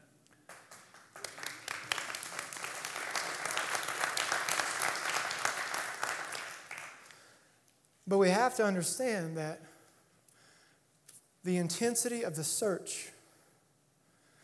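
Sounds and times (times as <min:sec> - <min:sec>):
crowd applause: 0:00.5 - 0:07.1
speech: 0:08.1 - 0:09.7, 0:11.4 - 0:13.2.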